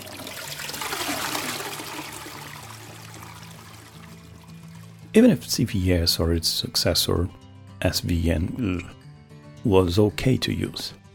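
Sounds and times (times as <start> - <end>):
toilet flushing: 0.0 - 5.1
speech: 5.2 - 9.0, 9.6 - 11.0.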